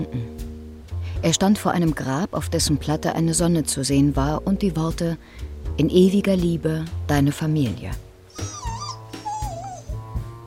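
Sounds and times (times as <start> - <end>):
speech: 0.0 - 0.4, 1.2 - 8.5
dog whimpering at a graveside: 8.3 - 10.2.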